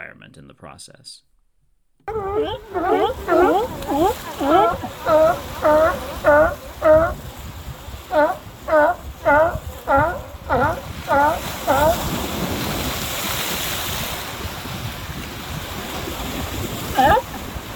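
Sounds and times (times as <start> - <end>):
speech: 0.4 - 1.3, 2.1 - 6.6
chorus of California sea lions barking: 2.1 - 12.7, 16.5 - 17.7
faint wash: 2.1 - 17.7.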